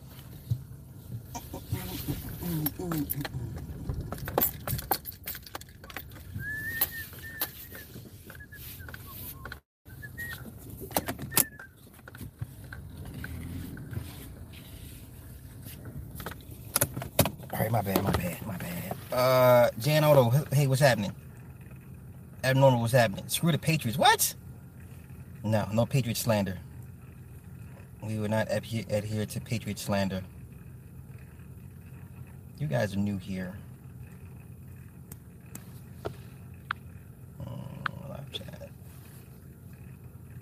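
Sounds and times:
low engine rumble of a car being moved: 0.0 - 40.4
speech: 2.5 - 3.6, 19.2 - 21.2, 22.4 - 24.4, 25.4 - 26.7, 28.1 - 30.3, 32.6 - 33.6
keys jingling: 4.0 - 6.3.

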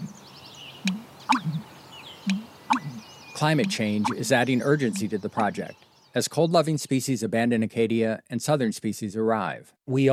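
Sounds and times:
American bittern pumping calls: 0.0 - 6.0
light wetland ambience: 0.0 - 6.4
faint twittering birdsong: 0.0 - 6.7
speech: 3.4 - 10.1.

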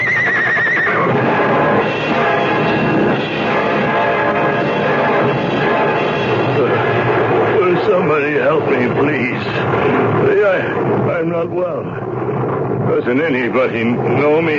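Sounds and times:
injured horse whinnying: 0.0 - 1.1
loud dense clatter and commotion: 0.0 - 14.5
speech: 13.1 - 14.5.

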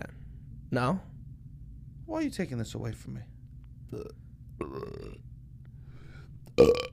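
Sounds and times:
speech: 0.7 - 1.1, 2.1 - 3.3, 3.9 - 5.3, 6.6 - 6.9
person burping: 3.9 - 5.2, 6.6 - 6.9.

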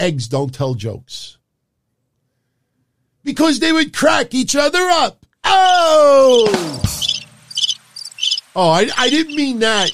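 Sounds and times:
speech: 0.0 - 1.4, 3.2 - 7.0, 8.6 - 9.9
cricket chirps: 6.3 - 9.9.

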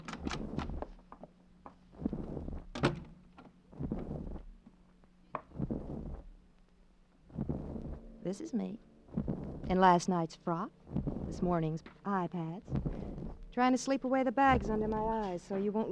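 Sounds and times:
unlocked door being opened: 0.0 - 1.0, 2.6 - 3.6
low steady hum: 0.0 - 15.9
speech: 8.3 - 13.0, 13.6 - 15.9.

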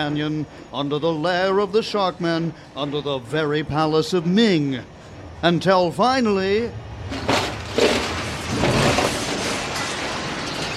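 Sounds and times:
speech: 0.0 - 7.3
grinding debris tumbling: 7.0 - 10.7
metal burrowing machine breaking up through a stone floor of a central hall: 7.2 - 10.7.

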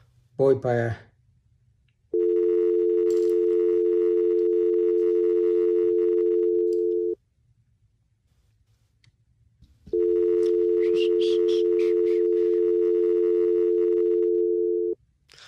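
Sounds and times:
speech: 0.4 - 1.1
telephone ringback tone while a call is placed: 2.2 - 7.2, 9.9 - 15.0.

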